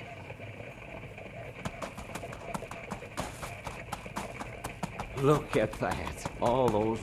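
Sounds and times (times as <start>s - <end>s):
pack mule hooves clip-clopping at walking pace: 0.0s - 7.0s
speech: 5.2s - 7.0s.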